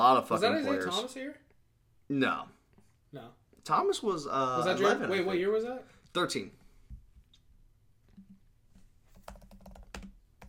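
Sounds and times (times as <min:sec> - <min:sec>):
speech: 0:00.0 - 0:01.5, 0:02.1 - 0:06.6
typing on a computer keyboard: 0:09.1 - 0:10.4.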